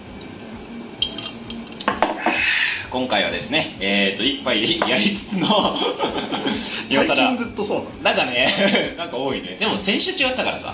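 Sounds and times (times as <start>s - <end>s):
glasses clinking in a toast: 1.0s - 2.4s
speech: 2.9s - 10.7s
laughter: 5.0s - 7.0s, 8.4s - 9.0s.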